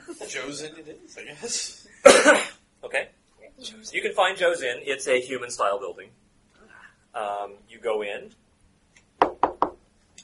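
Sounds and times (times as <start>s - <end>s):
speech: 0.3s - 6.2s, 7.2s - 8.4s
knocking on the door of an inn: 9.2s - 9.8s.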